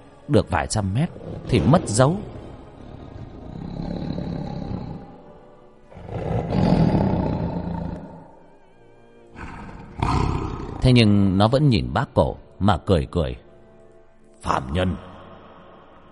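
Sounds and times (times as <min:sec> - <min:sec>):
speech: 0:00.3 - 0:02.3, 0:10.8 - 0:13.4, 0:14.4 - 0:15.1
huge dragon-elephant creature roaring angrily on a riverbank: 0:01.1 - 0:05.3, 0:05.9 - 0:08.4, 0:09.3 - 0:10.9.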